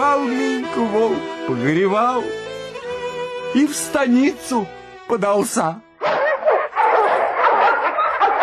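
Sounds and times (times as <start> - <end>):
speech: 0.2 - 2.5, 3.5 - 5.9
dogs barking and yipping in a Cossack village: 6.0 - 8.4.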